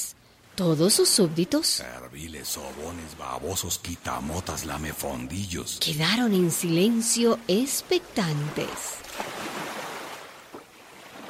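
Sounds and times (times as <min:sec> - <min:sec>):
sea waves washing in on a rising tide: 0:00.4 - 0:11.2
speech: 0:00.6 - 0:09.3.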